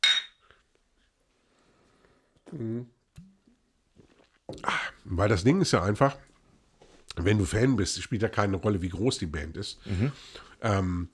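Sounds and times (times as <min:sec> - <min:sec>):
glasses clinking in a toast: 0:00.0 - 0:00.4
speech: 0:02.5 - 0:03.0, 0:04.6 - 0:06.3, 0:07.2 - 0:11.1
quiet rustling: 0:06.2 - 0:07.3.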